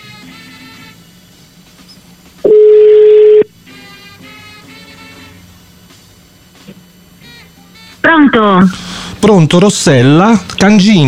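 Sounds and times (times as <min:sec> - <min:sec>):
ringback tone from an outgoing phone call: 0:02.4 - 0:03.5
speech: 0:08.1 - 0:11.0.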